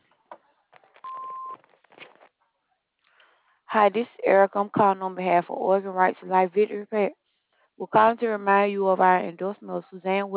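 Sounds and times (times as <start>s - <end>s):
answering machine beep: 1.0s - 1.6s
speech: 3.8s - 7.2s, 7.8s - 10.3s.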